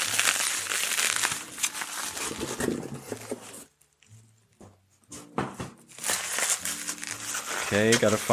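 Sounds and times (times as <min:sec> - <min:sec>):
bubble wrap being unwrapped crinkling and crackling: 0:00.0 - 0:04.2, 0:05.9 - 0:08.3
speech: 0:07.7 - 0:08.3.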